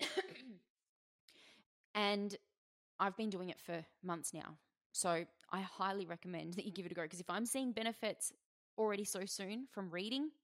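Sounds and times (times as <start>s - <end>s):
raspy throat clearing: 0.0s - 0.6s
speech: 2.0s - 10.4s.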